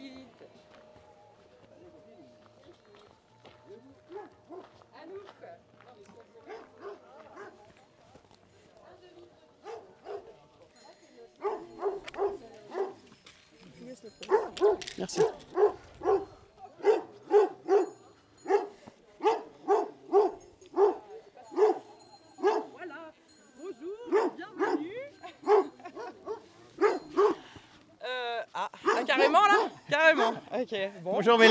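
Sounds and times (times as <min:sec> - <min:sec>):
murmuring voices: 0:00.0 - 0:30.5
outdoor noise: 0:00.0 - 0:31.4
livestock guardian dog barking: 0:04.1 - 0:04.7, 0:06.4 - 0:07.7, 0:09.6 - 0:10.4, 0:11.4 - 0:13.0, 0:14.2 - 0:22.8, 0:24.1 - 0:27.4, 0:28.8 - 0:30.5
speech: 0:15.0 - 0:15.5, 0:30.6 - 0:31.4.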